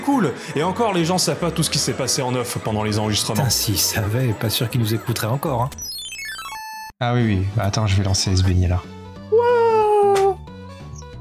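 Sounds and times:
speech: 0.0s - 5.9s, 7.0s - 9.4s
whiny baby crying: 9.3s - 10.4s.

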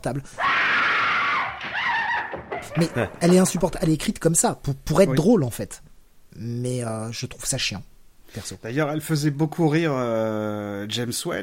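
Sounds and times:
speech: 0.0s - 0.5s, 2.3s - 11.4s
woman screaming and shrieking in a film excerpt: 0.4s - 2.8s
laughter: 2.2s - 3.6s.

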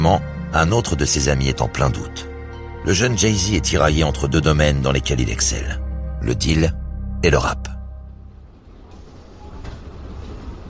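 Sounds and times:
speech: 0.0s - 7.7s
commuter train rumbling along the rails: 8.4s - 10.6s.

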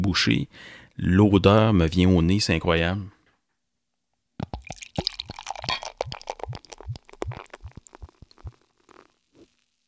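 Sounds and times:
speech: 0.1s - 3.2s
beer pouring from a freshly uncorked bottle into a glass: 4.4s - 9.2s.

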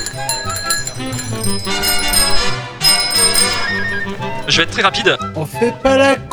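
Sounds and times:
bicycle bells ringing during a group cycling ride in Tournon: 0.0s - 6.0s
speech: 1.4s - 2.4s, 4.0s - 6.3s.

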